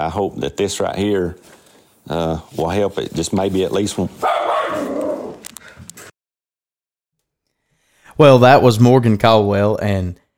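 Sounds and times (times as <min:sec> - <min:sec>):
speech: 0:00.0 - 0:04.9, 0:08.2 - 0:10.2
dog barking: 0:04.2 - 0:05.3.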